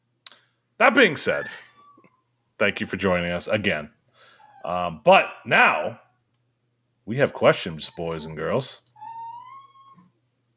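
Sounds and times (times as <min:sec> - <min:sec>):
speech: 0:00.8 - 0:01.7, 0:02.6 - 0:04.0, 0:04.6 - 0:06.0, 0:07.1 - 0:08.8
cat giving a high-pitched squeaking meow: 0:01.4 - 0:02.2, 0:09.0 - 0:10.1.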